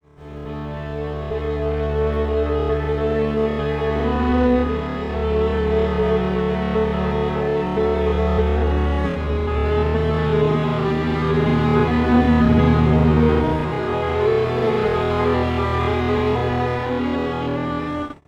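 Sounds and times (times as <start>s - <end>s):
strings time-stretched with Digidesign Pro Tools TS: 0.2s - 18.2s.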